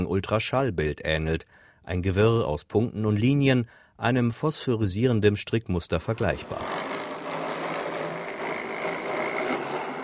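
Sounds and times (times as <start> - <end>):
speech: 0.0 - 7.0
mini mobile robot with rotating LiDAR scanner humming: 6.2 - 10.0.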